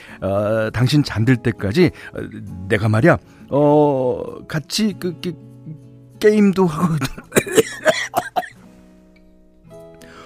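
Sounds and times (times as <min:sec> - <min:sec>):
speech: 0:00.1 - 0:05.5, 0:06.2 - 0:08.3
man with a choked-up throat coughing harshly: 0:07.0 - 0:08.6.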